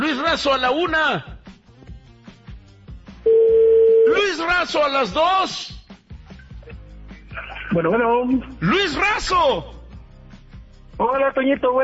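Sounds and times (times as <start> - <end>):
speech: 0.3 - 1.4, 4.1 - 5.7, 7.7 - 9.7, 11.0 - 11.8
telephone ringback tone on an outgoing call: 3.3 - 4.1.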